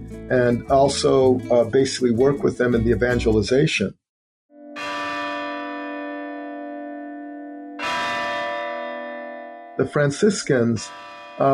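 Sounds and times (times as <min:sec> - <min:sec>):
speech: 0:00.2 - 0:04.0, 0:09.8 - 0:11.5
church bell tolling: 0:04.6 - 0:11.5.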